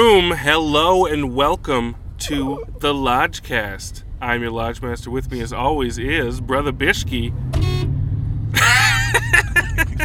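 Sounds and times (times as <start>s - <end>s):
speech: 0.0s - 7.7s
car horn honking: 7.6s - 8.0s
laughter: 8.6s - 10.0s.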